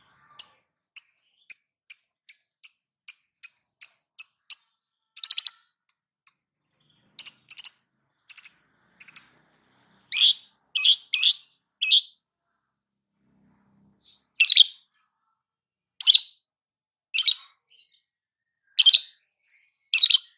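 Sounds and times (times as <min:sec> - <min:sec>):
female lovebird calls: 0:10.2 - 0:12.2, 0:14.4 - 0:14.8, 0:16.0 - 0:16.4, 0:17.2 - 0:17.9, 0:18.8 - 0:19.2, 0:20.0 - 0:20.3.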